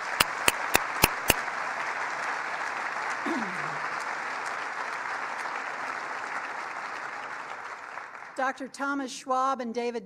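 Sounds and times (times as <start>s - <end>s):
sharp claps: 0.0s - 1.5s
audience applause: 0.0s - 8.4s
speech: 8.4s - 10.0s.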